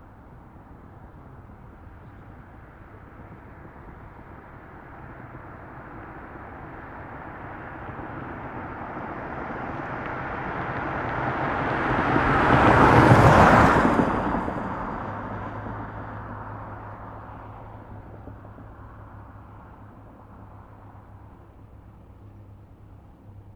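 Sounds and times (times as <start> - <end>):
car passing by fast outdoors in a desert: 3.4 - 21.2.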